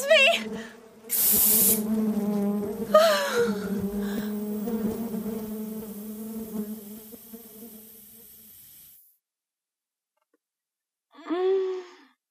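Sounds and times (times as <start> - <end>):
swarm of bees buzzing: 0.0 - 9.0
sharp hissing burst: 1.1 - 2.0, 3.5 - 9.1.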